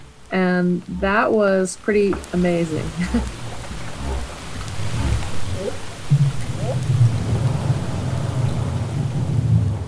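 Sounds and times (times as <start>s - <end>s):
speech: 0.3s - 3.4s
deep rumbling underwater hiss: 1.0s - 9.8s
laughter: 3.0s - 3.3s
whale mother and calf whoop contact calls: 6.5s - 6.9s.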